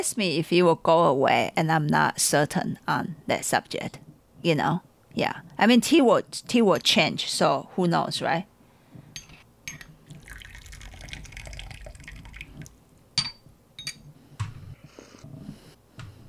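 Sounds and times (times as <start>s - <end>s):
speech: 0.0s - 8.5s
scattered drips of tea: 10.0s - 12.9s
tea pouring in a steady stream: 10.0s - 13.0s.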